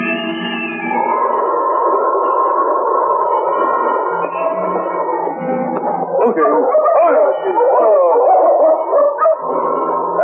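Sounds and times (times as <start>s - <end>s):
dog whining howls: 0.2s - 10.2s
dog excited yelps: 5.8s - 9.6s
dog barking at the door of a trading post: 5.9s - 10.2s.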